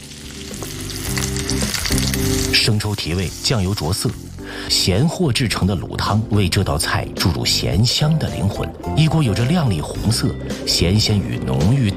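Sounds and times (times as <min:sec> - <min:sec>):
tofu skin sizzling as it stir-fries in a hot wok: 0:00.0 - 0:04.4
speech: 0:02.6 - 0:11.9.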